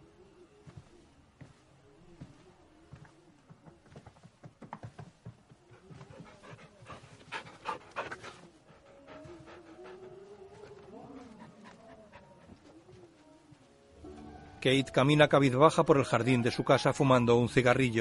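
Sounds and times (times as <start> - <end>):
dog panting in a house hallway: 5.7 - 12.9
speech: 14.6 - 18.0.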